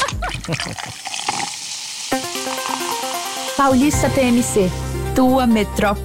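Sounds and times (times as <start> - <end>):
tonic water bottle opening and pouring: 0.0 - 4.0
speech: 0.5 - 1.3, 3.6 - 6.0.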